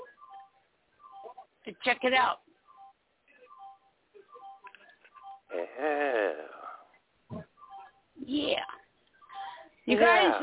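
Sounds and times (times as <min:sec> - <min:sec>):
electronic alarm beeping and warbling: 0:00.0 - 0:01.4, 0:02.7 - 0:05.5, 0:07.6 - 0:08.0
speech: 0:01.7 - 0:02.4, 0:05.5 - 0:06.6, 0:09.9 - 0:10.4.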